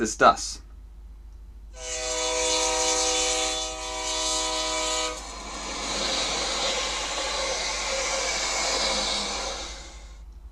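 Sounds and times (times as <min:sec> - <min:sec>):
speech: 0:00.0 - 0:00.6
train horn blast: 0:01.8 - 0:10.1.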